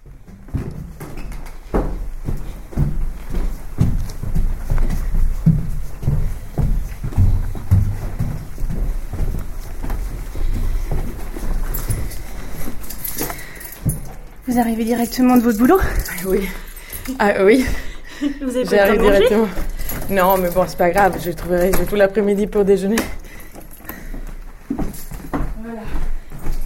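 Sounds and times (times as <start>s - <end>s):
heavy footsteps climbing a staircase: 0.0s - 26.6s
speech: 14.6s - 23.2s
laughter: 18.2s - 19.6s.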